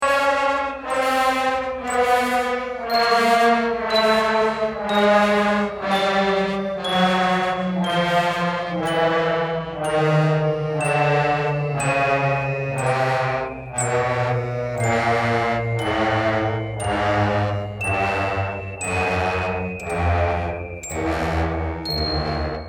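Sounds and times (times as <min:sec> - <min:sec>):
brass band playing a march with trills: 0:00.0 - 0:22.6.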